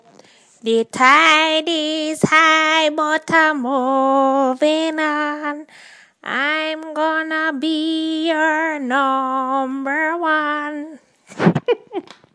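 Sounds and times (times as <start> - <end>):
Jamaican old woman singing rocksteady: 0.6 - 11.1.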